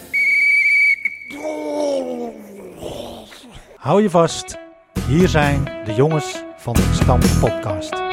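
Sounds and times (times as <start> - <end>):
shrill referee's whistle blast: 0.0 - 1.4
speech: 3.8 - 8.0.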